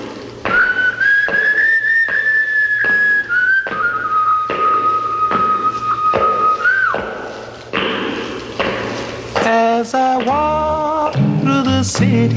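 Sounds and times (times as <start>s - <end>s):
thudding percussive beats: 0.0s - 12.3s
whistled melody in a 1950s blues record: 0.5s - 7.0s
band playing 1950s blues: 10.3s - 12.3s
speech: 11.9s - 12.3s.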